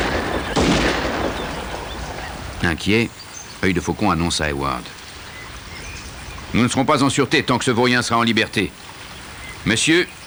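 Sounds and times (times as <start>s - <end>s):
gunshot in the woods: 0.0s - 2.6s
constant hiss: 0.0s - 10.2s
speech: 2.6s - 5.0s, 6.5s - 8.8s, 9.6s - 10.2s.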